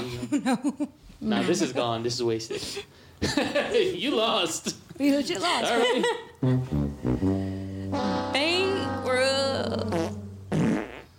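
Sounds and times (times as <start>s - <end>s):
speech: 0.3s - 7.6s
laughter: 2.5s - 4.0s, 5.6s - 6.6s
fart sound effects: 6.4s - 11.1s.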